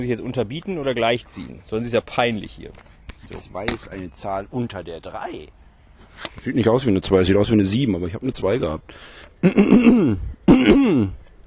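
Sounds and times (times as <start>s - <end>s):
speech: 0.0s - 5.6s, 6.2s - 11.2s
person clearing throat: 9.4s - 11.2s.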